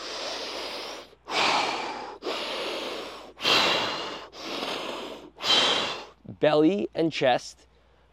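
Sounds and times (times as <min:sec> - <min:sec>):
huge deep breaths of a morning breathing exercise: 0:00.0 - 0:06.2
speech: 0:06.4 - 0:07.7.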